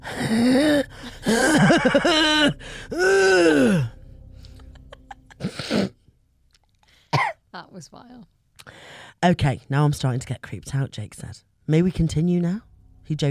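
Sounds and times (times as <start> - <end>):
person imitating deep heavy groaning breaths: 0.0 - 4.7
speech: 0.3 - 3.9, 7.8 - 13.2.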